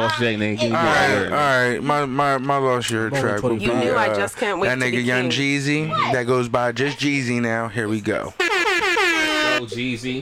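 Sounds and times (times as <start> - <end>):
speech: 0.0 - 8.5, 9.6 - 10.2
loud sustained air horn blast: 8.4 - 9.7.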